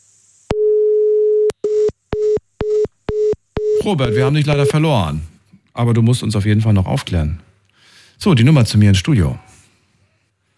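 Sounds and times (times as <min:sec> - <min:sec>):
telephone line tone: 0:00.5 - 0:04.8
telephone busy signal beeps on redial of a mobile phone: 0:03.1 - 0:04.8
speech: 0:03.9 - 0:07.5, 0:08.2 - 0:09.4.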